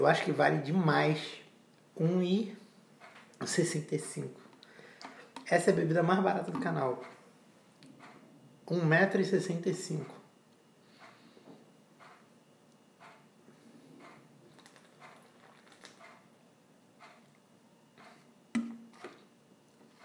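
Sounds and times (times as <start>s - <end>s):
speech: 0.0s - 1.4s, 2.0s - 2.6s, 3.4s - 4.4s, 5.5s - 7.2s, 8.7s - 10.2s
wall clock ticking: 3.0s - 3.7s, 6.5s - 7.3s, 7.9s - 8.3s, 10.0s - 10.2s, 10.9s - 12.4s, 13.0s - 13.4s, 14.0s - 14.3s, 16.0s - 16.3s, 17.0s - 17.4s, 18.0s - 18.3s.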